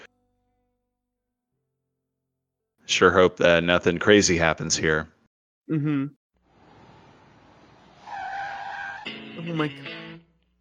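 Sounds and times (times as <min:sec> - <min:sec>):
speech: 0:02.9 - 0:06.2, 0:09.5 - 0:10.0
rough road noise: 0:06.4 - 0:10.1
car tires screeching in a skid: 0:06.6 - 0:09.3.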